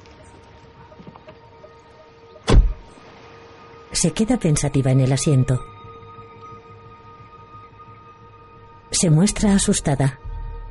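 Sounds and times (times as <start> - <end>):
car remote central locking unlocking clunk at a parked car outside a barracks: 2.5 - 2.8
speech: 3.9 - 5.7, 9.0 - 10.2.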